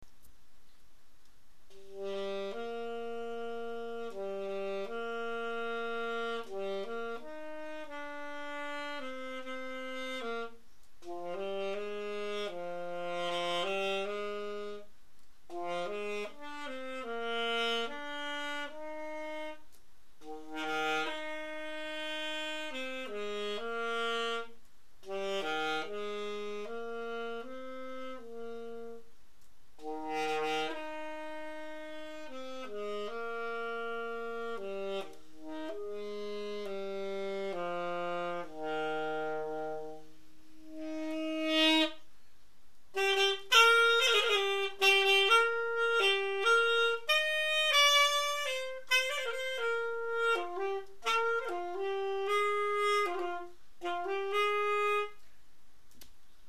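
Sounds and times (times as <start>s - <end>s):
lullaby jazz on saxophone: 0.7s - 56.4s.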